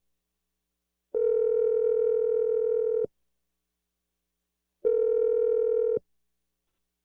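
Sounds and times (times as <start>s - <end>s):
telephone ringing tones: 1.2s - 3.1s, 4.9s - 6.0s.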